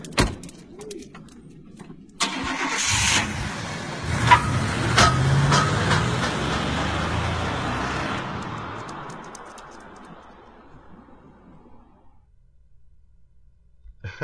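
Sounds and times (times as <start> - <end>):
sharp clicks and knocks: 0.0 - 2.2, 4.3 - 7.1, 8.2 - 10.6
car engine cranking and settling into a rumbling idle: 1.8 - 12.2.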